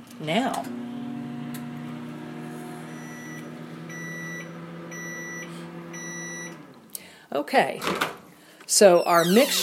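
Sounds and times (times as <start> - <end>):
speech: 0.2 - 0.9, 7.3 - 9.6
microwave oven humming with a low drone: 0.2 - 6.8
bright evenly spaced microwave oven beeps: 2.8 - 6.6, 8.9 - 9.6.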